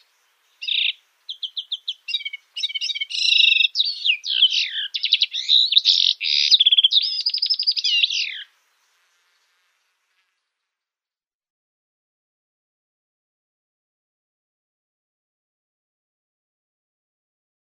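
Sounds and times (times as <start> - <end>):
Syrian serin singing a jingling twitter of buzzy trills: 0.0 - 10.3.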